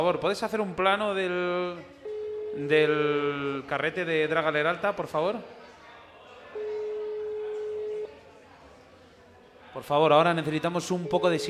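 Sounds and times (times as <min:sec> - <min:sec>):
speech: 0:00.0 - 0:02.0, 0:02.6 - 0:05.6, 0:09.8 - 0:11.4
faint murmur of voices: 0:00.0 - 0:11.4
telephone tone beep as a call is placed: 0:01.7 - 0:03.2, 0:06.5 - 0:08.2, 0:11.0 - 0:11.4.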